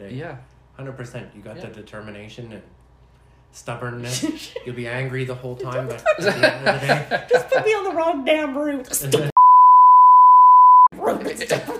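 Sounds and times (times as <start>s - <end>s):
speech: 0.0s - 2.8s, 3.5s - 9.3s, 11.2s - 11.7s
laughter: 5.8s - 7.9s
censor bleep over explicit word: 9.4s - 10.9s.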